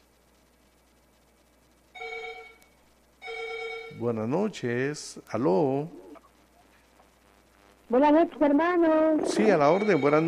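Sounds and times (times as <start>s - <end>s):
telephone ringing with incoming call in radio call-in studio: 2.0s - 2.6s, 3.2s - 4.2s, 9.2s - 10.2s
speech: 4.0s - 6.0s, 7.9s - 10.2s.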